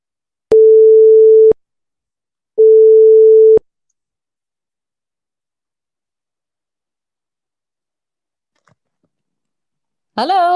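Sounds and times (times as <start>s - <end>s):
telephone tones as a call is dialled: 0.5s - 1.6s, 2.6s - 3.6s.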